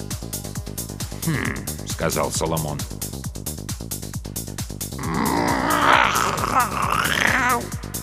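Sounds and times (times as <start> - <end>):
mechanical cat's throaty grunt: 1.2 - 1.8, 4.9 - 7.8
speech: 1.2 - 3.1.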